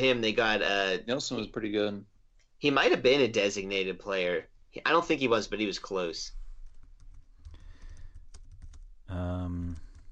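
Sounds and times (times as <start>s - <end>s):
speech: 0.0s - 6.4s, 9.1s - 9.8s
typing on a computer keyboard: 6.6s - 8.9s, 9.6s - 10.1s.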